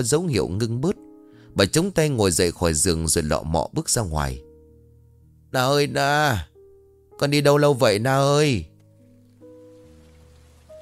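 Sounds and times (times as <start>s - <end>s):
speech: 0.0s - 1.0s, 1.6s - 4.5s, 5.5s - 6.5s, 7.2s - 8.7s
rain starting to pour: 9.5s - 10.7s.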